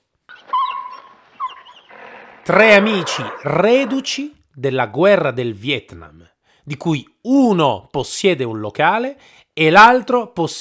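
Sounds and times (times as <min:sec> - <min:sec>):
Doberman dogs growling and snarling: 0:01.4 - 0:04.2
speech: 0:02.5 - 0:10.5.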